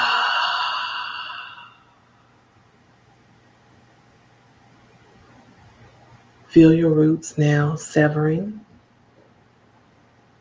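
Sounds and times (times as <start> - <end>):
deep voiced exhale after a nasal inhale during guided breathing meditation: 0.0 - 2.0
speech: 6.5 - 8.7.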